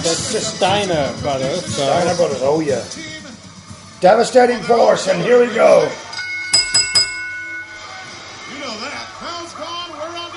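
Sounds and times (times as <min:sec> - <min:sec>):
noisy background: 0:00.0 - 0:10.3
speech: 0:00.3 - 0:03.2, 0:04.0 - 0:06.0
wrestling match bell ringing: 0:06.2 - 0:08.5.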